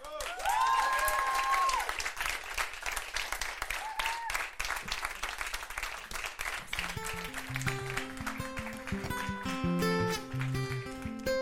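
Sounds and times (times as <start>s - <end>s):
audience applause: 0.0s - 11.3s
audience whoops and whistles: 3.8s - 4.4s.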